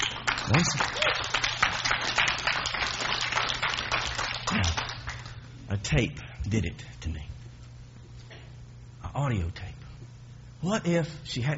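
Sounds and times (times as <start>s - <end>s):
crowd clapping during a church sermon: 0.0s - 5.4s
speech: 0.5s - 1.1s, 5.9s - 7.3s, 9.2s - 9.8s, 10.6s - 11.5s
person whooping: 0.5s - 1.4s, 4.5s - 5.0s.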